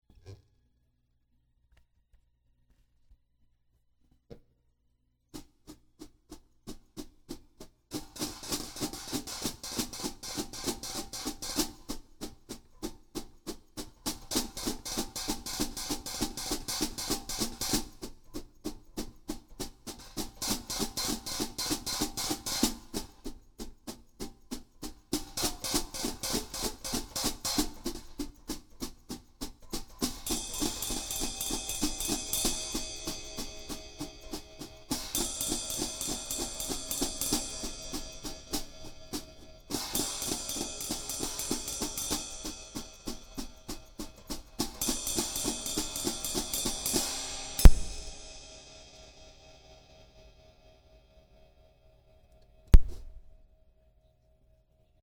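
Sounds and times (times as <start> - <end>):
drum interlude: 7.9 - 48.5, 52.8 - 53.4.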